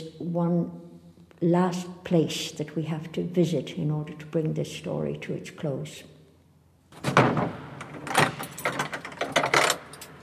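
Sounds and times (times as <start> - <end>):
speech: 0.0 - 0.8, 1.4 - 6.1
heavy mausoleum door grinding and clunking open: 7.0 - 10.2.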